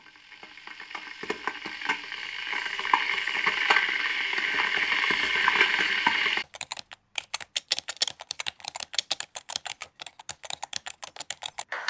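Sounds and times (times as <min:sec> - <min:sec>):
kettle heating water: 0:00.0 - 0:06.4
scattered clicks: 0:06.4 - 0:11.7.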